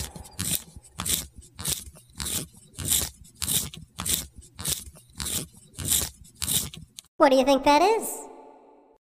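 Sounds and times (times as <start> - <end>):
pencil being sharpened: 0.0 - 7.1
speech: 7.2 - 8.2.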